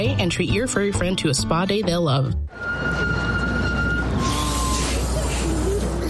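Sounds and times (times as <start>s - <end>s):
speech: 0.0s - 3.3s
steady traffic noise: 2.5s - 6.0s.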